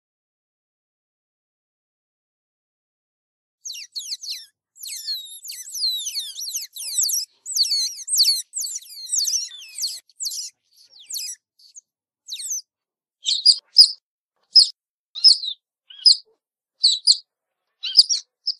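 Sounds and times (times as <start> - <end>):
otter thin descending squeaks: 3.7 - 12.6, 13.3 - 14.0, 14.6 - 17.2, 17.8 - 18.5.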